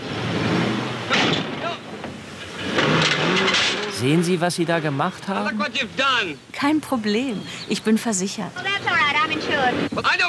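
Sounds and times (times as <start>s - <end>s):
car engine revving while pulling out of a tight parking spot: 0.0s - 6.0s
speech: 4.0s - 10.2s.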